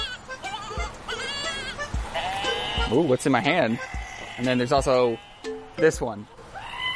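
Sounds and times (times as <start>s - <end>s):
screaming goat toy button: 0.5s - 2.8s, 6.5s - 6.9s
speech: 2.9s - 6.4s.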